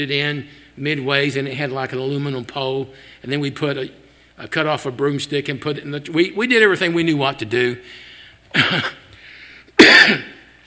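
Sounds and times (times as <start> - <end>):
speech: 0.0 - 9.0, 9.8 - 10.3
faint breathy noise: 2.9 - 3.3, 7.8 - 8.5, 9.1 - 9.8
person coughing after recovering from COVID: 8.5 - 9.1, 9.8 - 10.5.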